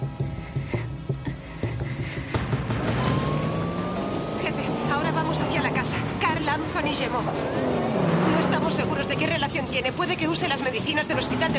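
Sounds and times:
soft rhythmic thumps and rattles inside a moving car: 0.0s - 3.8s
engine hum inside a moving car: 2.3s - 11.5s
speech: 5.3s - 8.0s, 8.6s - 11.5s.

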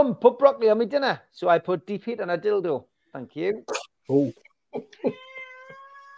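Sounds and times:
speech: 0.0s - 5.3s
cat meowing: 5.0s - 6.1s.

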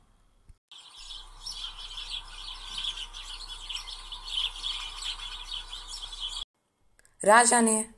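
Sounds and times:
dense chorus of many birds chirping and twittering at a gathering: 0.7s - 6.5s
speech: 7.2s - 7.9s.

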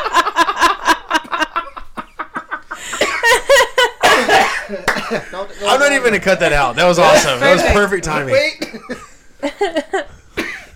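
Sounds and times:
laughter: 0.0s - 6.2s, 8.7s - 10.1s
sputtering coughing fit from choking on drink: 2.3s - 5.3s, 8.3s - 9.1s, 10.4s - 10.7s
speech: 5.1s - 9.0s, 9.6s - 10.1s.

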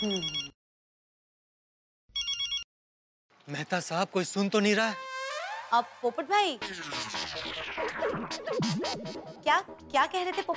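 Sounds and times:
speech: 0.0s - 0.4s, 3.5s - 5.1s, 5.7s - 10.5s
telephone ringing in short electronic bursts: 2.2s - 2.7s.

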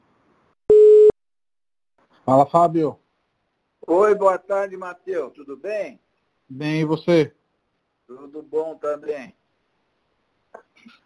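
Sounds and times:
telephone beep as an outgoing call is placed: 0.7s - 1.2s
speech: 2.2s - 3.0s, 3.9s - 7.4s, 8.1s - 9.4s.

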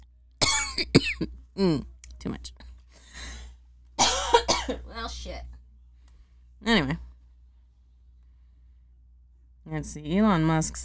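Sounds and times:
short coughs: 0.4s - 1.3s, 4.0s - 4.9s
harsh raspy throat-clearing rattle: 0.4s - 1.9s, 4.0s - 4.8s
speech: 0.8s - 2.6s, 4.7s - 5.6s, 6.6s - 7.1s, 9.7s - 10.8s.

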